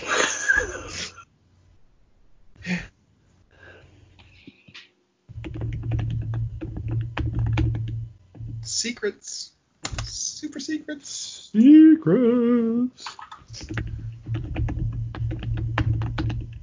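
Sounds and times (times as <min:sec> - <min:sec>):
typing on a computer keyboard: 0:05.4 - 0:08.0, 0:13.6 - 0:16.6
speech: 0:09.0 - 0:09.5, 0:10.8 - 0:13.1.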